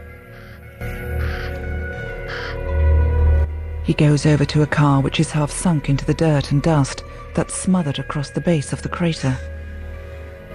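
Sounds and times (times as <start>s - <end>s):
black-feathered birds cawing harshly on a caravan roof: 0.2s - 2.7s
speech: 3.9s - 9.5s.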